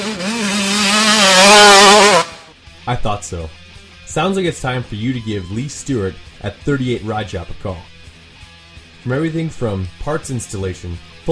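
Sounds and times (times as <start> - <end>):
dirt bike engine revving: 0.0 - 2.6
speech: 2.9 - 7.9, 9.0 - 11.3.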